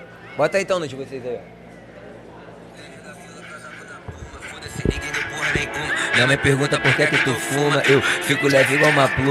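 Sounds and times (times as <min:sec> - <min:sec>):
speech: 0:00.4 - 0:01.6, 0:04.8 - 0:09.2
person beatboxing a drill beat with their mouth: 0:04.0 - 0:09.2.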